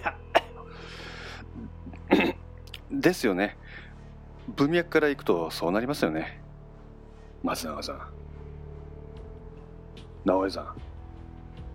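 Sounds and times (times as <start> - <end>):
person coughing after sipping canned coffee: 0.0 - 0.6, 2.1 - 2.4
speech: 3.0 - 3.6, 4.5 - 6.4, 7.4 - 8.2, 10.2 - 10.9.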